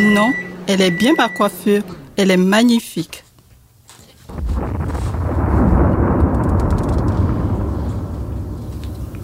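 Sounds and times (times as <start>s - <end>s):
speech: 0.2s - 3.2s
explosion with rumbling roar: 4.3s - 9.2s.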